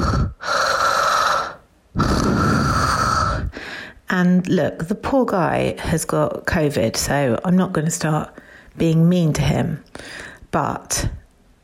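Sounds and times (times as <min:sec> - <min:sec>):
person imitating a man's heavy mouth breathing in bed: 0:00.0 - 0:04.0
speech: 0:04.1 - 0:11.2.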